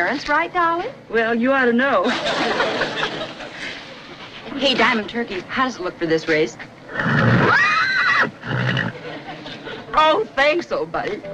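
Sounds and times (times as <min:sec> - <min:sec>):
speech: 0:00.0 - 0:03.4, 0:04.5 - 0:07.6, 0:10.0 - 0:11.3
laughter: 0:02.0 - 0:04.3, 0:08.7 - 0:10.2
horse whinnying: 0:06.9 - 0:08.9
snorting: 0:08.4 - 0:09.0.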